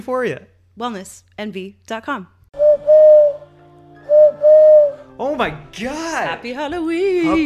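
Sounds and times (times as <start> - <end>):
speech: 0.0 - 2.9, 5.2 - 7.4
person imitating owl hoots: 2.6 - 3.4, 4.1 - 5.0.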